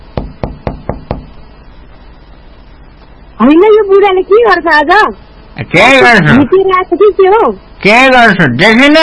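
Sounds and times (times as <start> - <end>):
knocking on a house door at night: 0.1 - 1.4
speech: 3.4 - 9.0.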